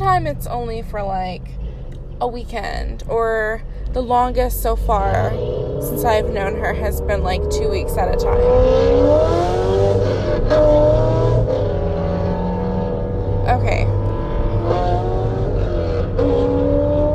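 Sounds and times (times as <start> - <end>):
loud car engine revving: 0.0 - 17.1
speech: 0.1 - 1.6, 2.2 - 11.2.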